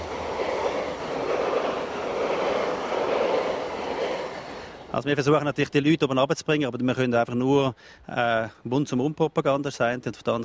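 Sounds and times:
train rumbling past: 0.0s - 6.9s
speech: 5.0s - 10.4s.

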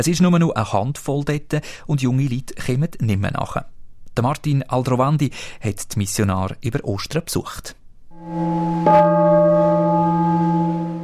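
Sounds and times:
speech: 0.0s - 9.6s
gong stroke announcing mealtime: 8.1s - 11.0s.

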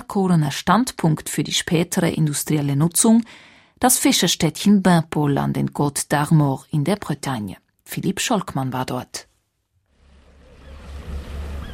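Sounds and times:
speech: 0.1s - 9.3s
water noise: 9.9s - 11.7s
wind: 9.9s - 11.7s
yacht engine chugging while motoring out of a harbour: 10.0s - 11.7s.

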